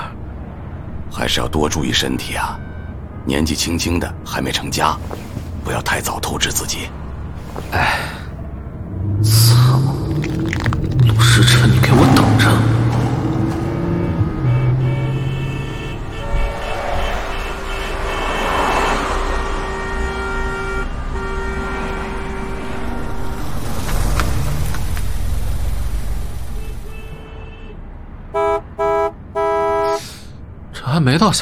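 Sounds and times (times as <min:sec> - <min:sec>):
rumble of engines in a traffic jam: 0:00.0 - 0:31.4
speech: 0:01.2 - 0:07.0, 0:07.6 - 0:08.1, 0:09.2 - 0:09.6, 0:11.1 - 0:12.8
car horns honking in a traffic jam: 0:04.4 - 0:23.0, 0:26.9 - 0:30.0.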